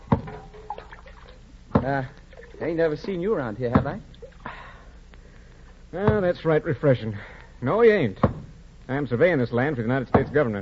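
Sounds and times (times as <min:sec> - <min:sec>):
dipper clunking against a bucket of cool spring water: 0:00.0 - 0:02.6, 0:03.7 - 0:04.2
spring water trickling and dripping as it is scooped and poured: 0:00.2 - 0:03.3, 0:03.9 - 0:04.6
speech: 0:01.8 - 0:04.1, 0:05.9 - 0:10.6.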